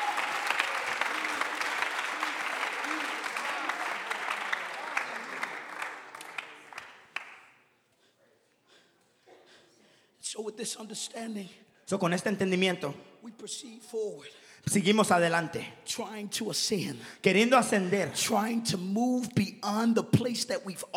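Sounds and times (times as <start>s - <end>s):
audience clapping: 0.0s - 7.6s
speech: 10.4s - 20.9s.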